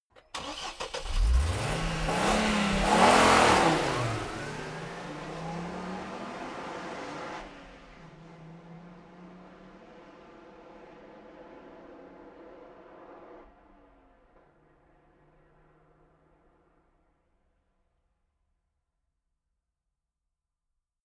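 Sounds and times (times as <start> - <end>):
car driving away: 0.3 - 10.5
car engine revving: 0.4 - 7.8.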